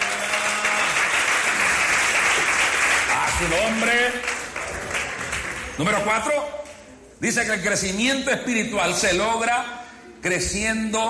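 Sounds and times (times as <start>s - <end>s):
church audience applauding: 0.0s - 6.0s
speech: 3.4s - 4.3s, 5.8s - 6.6s, 7.2s - 11.0s.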